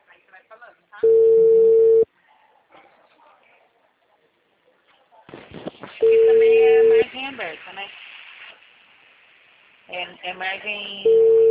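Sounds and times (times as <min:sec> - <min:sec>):
telephone tone after a dropped call: 0:01.0 - 0:02.1, 0:06.0 - 0:07.0, 0:11.0 - 0:11.4
speech: 0:10.3 - 0:11.3.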